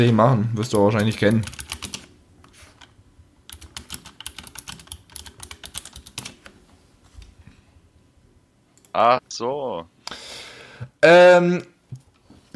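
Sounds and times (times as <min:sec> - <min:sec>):
speech: 0:00.0 - 0:01.6, 0:09.0 - 0:09.9, 0:10.8 - 0:11.7
typing a chat message on a computer keyboard: 0:00.7 - 0:02.1, 0:02.8 - 0:06.5.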